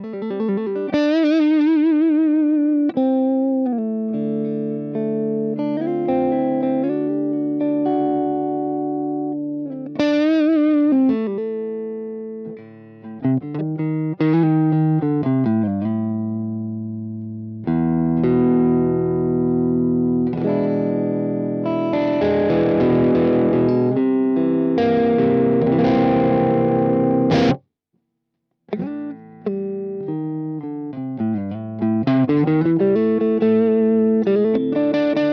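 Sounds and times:
single coil guitar: 0.0s - 27.7s, 28.7s - 35.3s.

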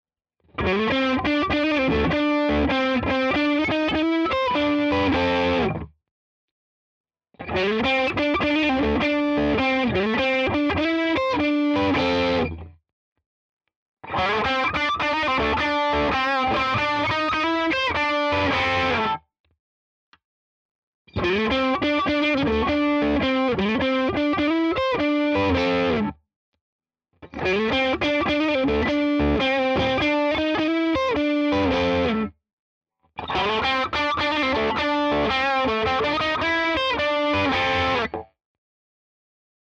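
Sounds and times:
crunchy electric guitar lick in all positions: 0.6s - 5.8s, 7.4s - 12.7s, 14.1s - 19.2s, 21.2s - 26.1s, 27.2s - 32.3s, 33.2s - 38.3s.

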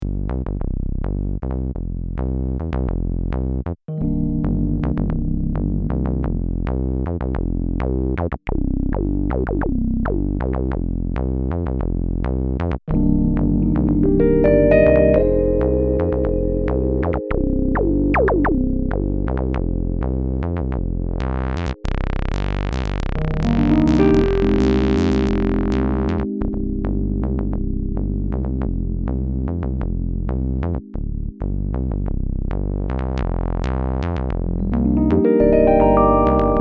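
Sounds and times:
bass: 0.0s - 36.5s
Rhodes electric piano: 3.9s - 7.0s, 12.9s - 21.8s, 23.2s - 30.9s, 34.6s - 36.5s.

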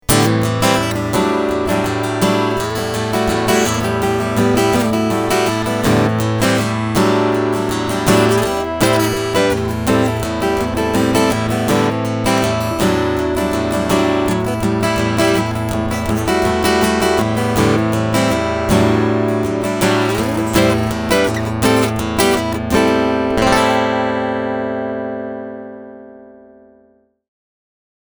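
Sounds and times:
strumming: 0.0s - 26.6s.

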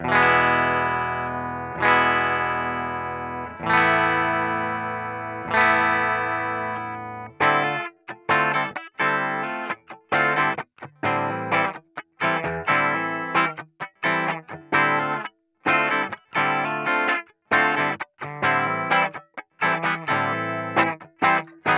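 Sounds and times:
clean Ibanez RG631 electric guitar on bridge humbucker: 0.0s - 21.7s.

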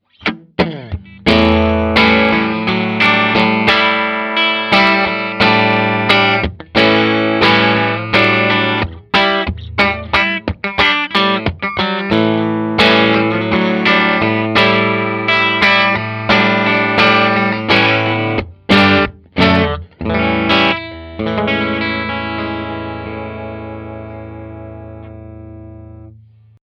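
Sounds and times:
electric guitar clean tone on bridge pickup: 0.0s - 26.6s.

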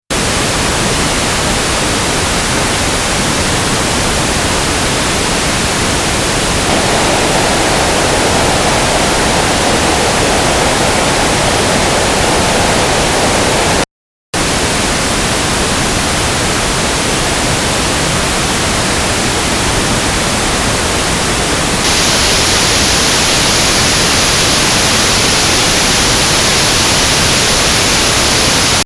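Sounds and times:
pink noise: 0.1s - 28.8s.

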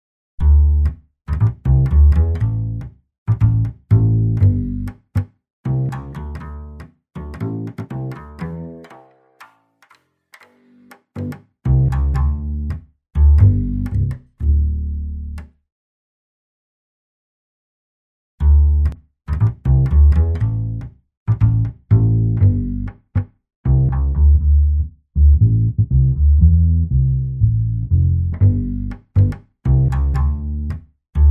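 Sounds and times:
bass with high and low cut filtering: 0.4s - 5.0s, 5.7s - 8.8s, 11.2s - 15.4s, 18.4s - 31.2s.

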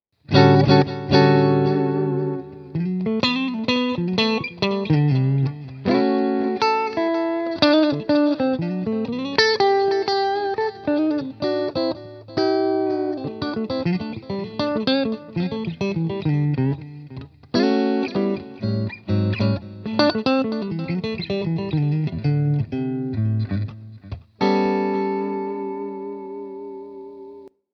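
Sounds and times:
electric guitar neck pickup playing: 0.2s - 27.5s.

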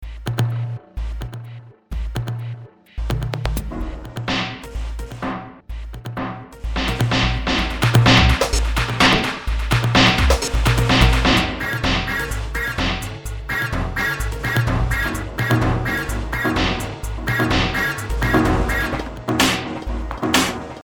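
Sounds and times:
drum kit: 0.0s - 20.8s.

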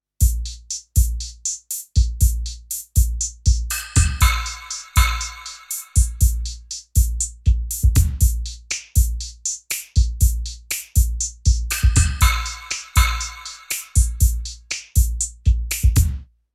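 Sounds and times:
drum machine groove: 0.2s - 16.2s.

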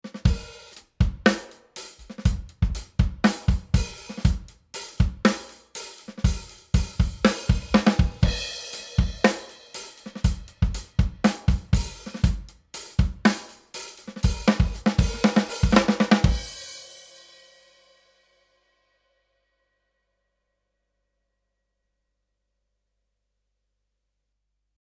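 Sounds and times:
drums through a bus compressor: 0.1s - 16.7s.

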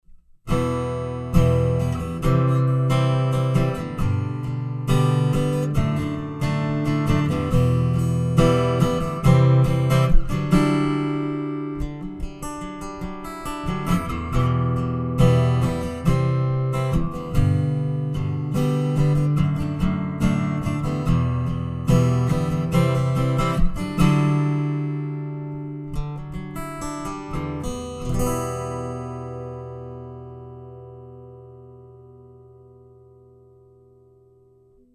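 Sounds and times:
Ibanez AW54 dreadnought acoustic guitar strumming through Fishman Aura Spectrum: 0.1s - 34.9s.

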